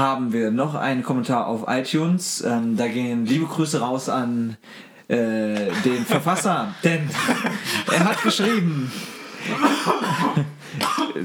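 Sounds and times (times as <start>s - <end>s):
speech: 0.0s - 11.2s
laughter: 5.6s - 11.2s
rough throaty coughs: 7.4s - 11.2s.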